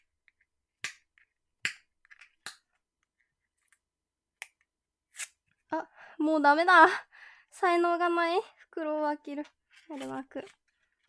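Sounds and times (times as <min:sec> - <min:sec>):
speech: 0:05.7 - 0:10.6
crinkly plastic clicks and scratches from peeling round sealing tape: 0:09.7 - 0:11.0.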